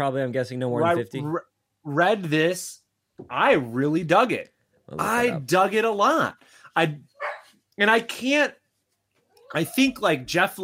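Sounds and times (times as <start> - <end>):
speech: 0.0 - 7.1, 7.8 - 8.6, 9.5 - 10.6
dog barking: 7.2 - 7.5.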